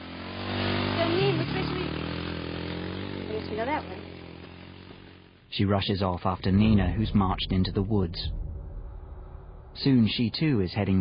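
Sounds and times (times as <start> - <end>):
quad bike engine droning as the rider heads off: 0.0 - 8.5
speech: 3.6 - 4.0, 5.5 - 8.4, 9.8 - 11.0.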